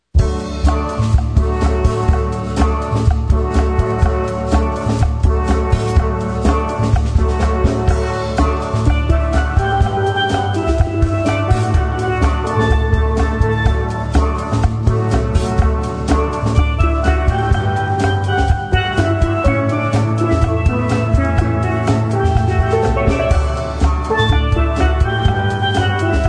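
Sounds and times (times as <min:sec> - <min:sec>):
steel pan: 0:00.6 - 0:26.2.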